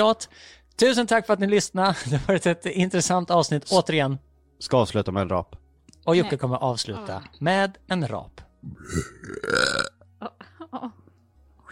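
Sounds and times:
speech: 0.0 - 9.6, 10.2 - 11.0
person's deliberately forced airy burp: 8.6 - 10.0.

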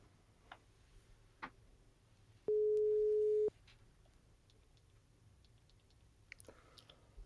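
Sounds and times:
telephone ringback tone: 2.5 - 3.5.

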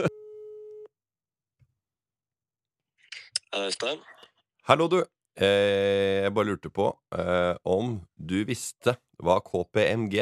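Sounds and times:
speech: 0.0 - 0.2, 3.5 - 10.2
telephone line signal tone while a call is placed: 0.0 - 0.9.

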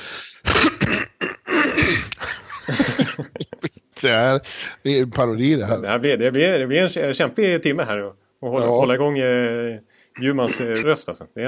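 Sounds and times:
person clearing throat: 0.4 - 2.2
person coughing: 0.4 - 2.2
laughter: 2.2 - 3.8, 10.1 - 10.8
speech: 4.0 - 11.4.

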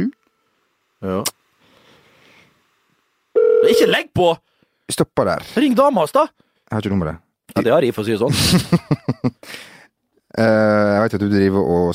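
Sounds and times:
speech: 1.0 - 1.4, 3.7 - 9.6, 10.4 - 11.9
electronic telephone ringing tone of a call placed to New York: 3.4 - 4.0
laughter: 8.3 - 9.4.

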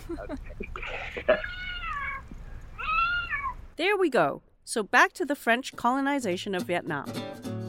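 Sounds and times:
faint hum: 0.0 - 6.4
speech: 0.1 - 0.6, 3.8 - 7.5
two cats meowing insistently for dinner: 0.8 - 3.7.

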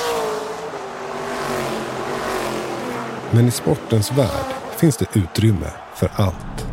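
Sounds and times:
race car engine roaring past: 0.0 - 5.1
speech: 3.3 - 6.6.

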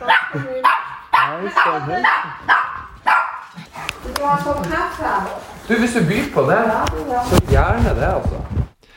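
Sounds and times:
small Tibetan spaniel-Pomeranian mix dog barking and yelping: 0.0 - 4.0
speech: 0.3 - 0.6, 1.4 - 2.6, 4.2 - 8.5.

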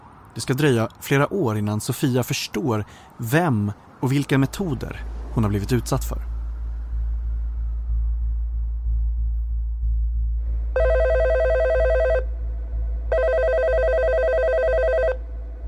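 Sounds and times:
speech: 0.4 - 6.3
low rumbling drone: 4.4 - 15.6
telephone ringing in electronic bursts: 10.8 - 12.2, 13.1 - 15.2.

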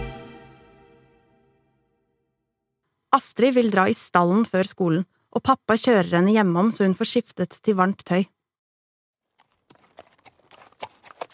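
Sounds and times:
speech: 3.1 - 8.4
horse hooves clopping on firm ground around a small lake: 9.3 - 11.3.

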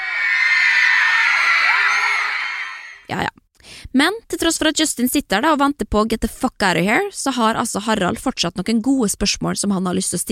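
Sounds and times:
large audience shrieking and squealing with delight: 0.0 - 3.1
speech: 3.1 - 10.3.

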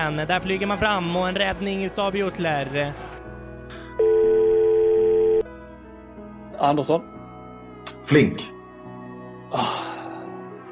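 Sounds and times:
speech: 0.0 - 3.1, 6.6 - 7.2, 8.1 - 8.6
telephone ringing tone: 4.0 - 5.5.

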